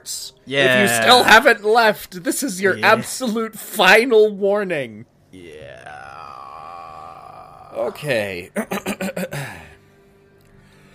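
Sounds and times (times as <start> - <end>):
speech: 0.0 - 6.4, 7.7 - 9.8
person yawning: 5.4 - 7.8.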